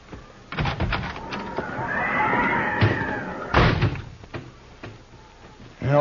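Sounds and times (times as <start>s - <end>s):
horse neighing: 1.2s - 3.9s.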